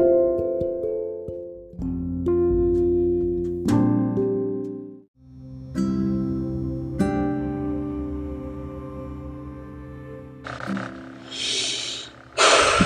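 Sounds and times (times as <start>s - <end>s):
steady musical background: 0.0s - 12.8s
deep breath in and out: 10.5s - 12.8s.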